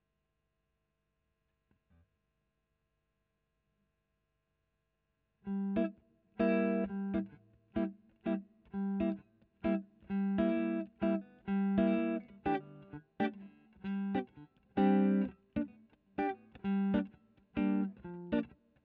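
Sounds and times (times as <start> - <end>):
electric guitar: 5.5 - 18.8.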